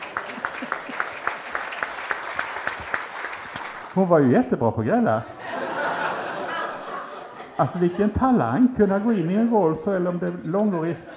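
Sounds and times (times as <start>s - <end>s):
laughter: 0.0s - 1.8s, 5.1s - 11.1s
audience applause: 0.0s - 4.3s
one steady prominent clapper keeping a quick even beat: 0.0s - 4.4s
speech: 4.0s - 5.4s, 7.6s - 11.1s.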